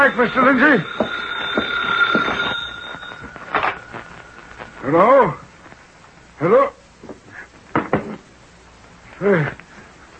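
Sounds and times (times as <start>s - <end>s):
speech: 0.0s - 1.1s, 4.9s - 5.4s, 6.4s - 6.8s, 9.2s - 9.6s
telephone ringing in an office: 0.0s - 5.1s.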